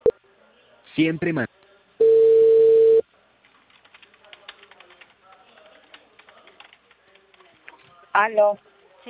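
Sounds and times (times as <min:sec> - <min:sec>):
speech: 0:01.0 - 0:01.5, 0:08.2 - 0:09.0
telephone tone after a call is cut off: 0:02.0 - 0:03.0.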